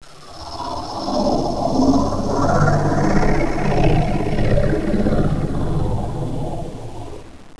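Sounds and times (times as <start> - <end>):
fly-by whoosh: 0.2 - 7.4.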